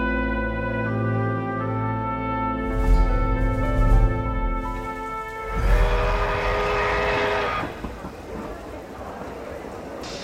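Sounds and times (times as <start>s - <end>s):
train horn blasts at a railway station: 0.0s - 7.8s
low rumble and clatter of a train at a station: 2.7s - 10.2s.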